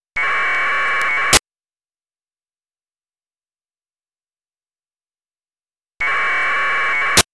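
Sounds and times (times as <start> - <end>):
AFSK data modem tones: 0.1 - 1.4, 6.0 - 7.3.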